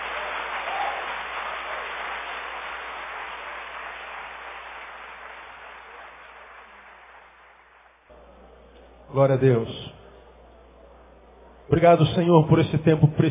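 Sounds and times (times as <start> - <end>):
crowd applauding: 0.0 - 8.2
speech: 9.1 - 9.9, 11.7 - 13.2.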